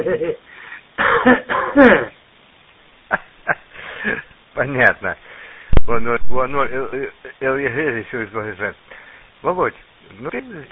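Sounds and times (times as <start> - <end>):
speech: 0.0 - 2.2, 3.5 - 10.6
people coughing over a narrow-band line: 1.0 - 2.2.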